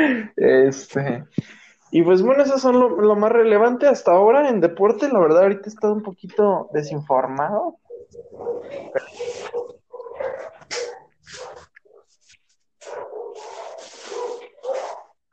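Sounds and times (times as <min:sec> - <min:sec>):
speech: 0:00.0 - 0:09.8
several street dogs barking and yelping: 0:07.8 - 0:12.2, 0:12.8 - 0:15.2.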